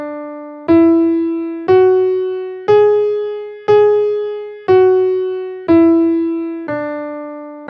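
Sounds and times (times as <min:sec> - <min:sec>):
guitar playing an eight-tone Spanish scale in A-flat: 0:00.7 - 0:06.8.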